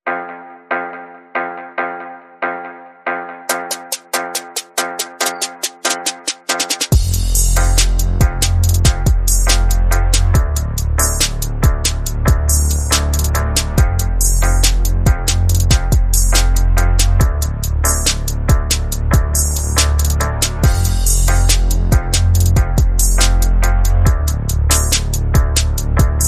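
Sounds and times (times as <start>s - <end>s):
percussion: 3.5s - 26.2s
bass: 6.9s - 26.2s.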